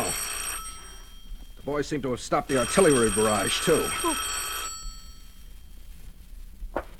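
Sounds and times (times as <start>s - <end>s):
old-fashioned telephone bell ringing: 0.0s - 5.9s
speech: 1.7s - 4.5s.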